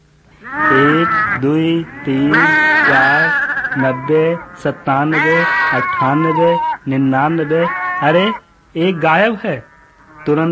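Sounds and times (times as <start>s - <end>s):
sheep bleating: 0.4s - 10.5s
speech: 0.4s - 10.5s.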